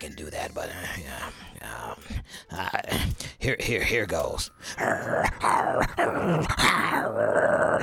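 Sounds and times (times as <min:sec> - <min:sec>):
speech: 0:00.0 - 0:07.8
person imitating a small dog growling: 0:04.8 - 0:07.8.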